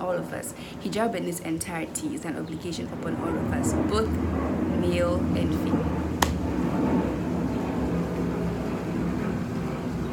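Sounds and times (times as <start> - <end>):
airplane engine rumble passing overhead: 0.0 - 10.1
speech: 0.2 - 6.0
sharp click: 6.2 - 6.4.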